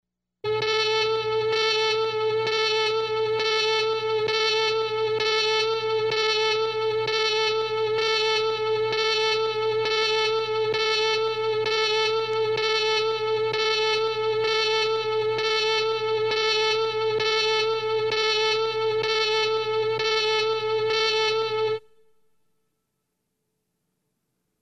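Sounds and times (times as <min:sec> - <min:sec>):
red alert alarm: 0:00.4 - 0:21.9.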